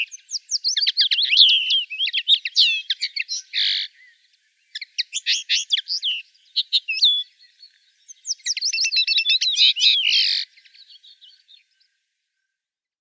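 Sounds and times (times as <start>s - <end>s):
common linnet twittering song: 0.0s - 12.5s.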